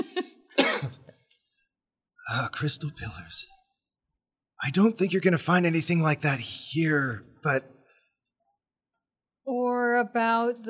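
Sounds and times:
person coughing: 0:00.6 - 0:01.1
speech: 0:02.4 - 0:03.6, 0:04.6 - 0:07.8, 0:10.0 - 0:10.6.

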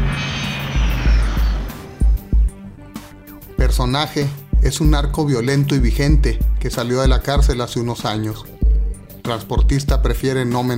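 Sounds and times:
Learjet 35 business jet turbine engine whine: 0:00.0 - 0:03.5
heavy low thuds: 0:00.0 - 0:03.9
speech: 0:03.7 - 0:08.5, 0:09.2 - 0:10.7.

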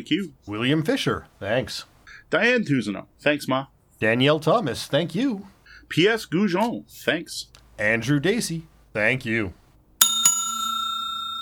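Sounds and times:
speech: 0:00.0 - 0:09.6
bright bell ringing: 0:10.0 - 0:11.4.

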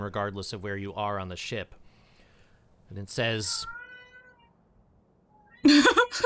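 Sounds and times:
speech: 0:00.0 - 0:01.8, 0:02.9 - 0:03.8, 0:05.6 - 0:06.2
cat meowing: 0:03.5 - 0:04.6, 0:05.3 - 0:05.7.

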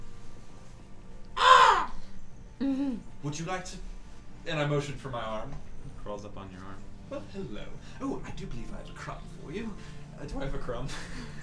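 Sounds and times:
faint hum: 0:00.0 - 0:11.4
crow cawing from a window: 0:01.4 - 0:02.0
speech: 0:03.2 - 0:11.4
laughter: 0:10.6 - 0:11.4.

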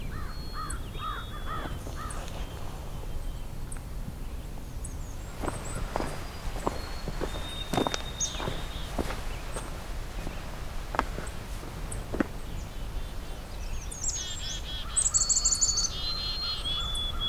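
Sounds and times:
black-capped chickadee and white-throated sparrow singing: 0:00.0 - 0:17.2
crunching footsteps outdoors: 0:01.1 - 0:03.2, 0:05.1 - 0:14.5.

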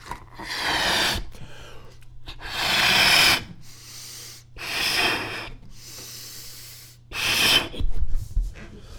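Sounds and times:
person blowing air into a 30-inch balloon by mouth: 0:00.0 - 0:01.4, 0:02.4 - 0:08.0
person inhaling: 0:00.4 - 0:07.8.

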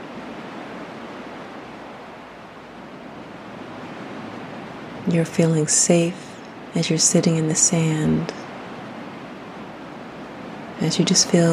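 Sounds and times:
steady ocean surf: 0:00.0 - 0:11.5
speech: 0:05.0 - 0:06.2, 0:06.8 - 0:08.4, 0:10.8 - 0:11.5.

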